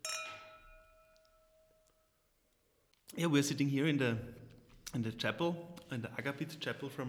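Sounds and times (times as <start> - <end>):
two wine glasses clinking in a toast: 0.0 - 1.8
speech: 3.1 - 7.0.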